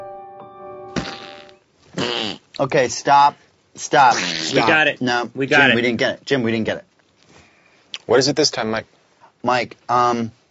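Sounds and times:
fart noises blown with the mouth as overdubbed farts: 0.9 - 2.6, 4.1 - 4.8
speech: 1.9 - 6.9, 8.1 - 10.4.

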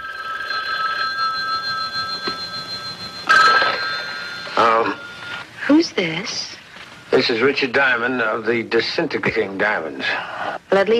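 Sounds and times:
telephone ringing with a bright trilling bell: 0.0 - 5.5
steady tone: 0.0 - 5.7
speech: 5.7 - 10.9.

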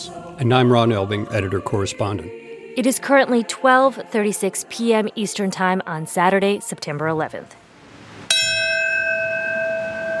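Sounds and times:
speech: 0.0 - 7.6
memorial bell strike: 8.3 - 10.1.

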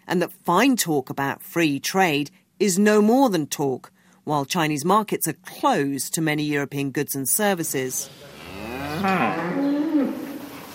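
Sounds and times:
faint steady hum: 0.0 - 10.7
speech: 0.1 - 8.4, 9.0 - 9.7
dairy cows mooing on a farm: 8.3 - 10.5.

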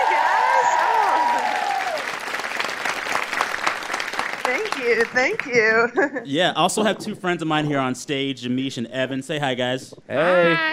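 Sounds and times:
rising whoop: 0.0 - 2.1
live audience clapping and cheering: 0.0 - 5.9
speech: 4.5 - 10.7.

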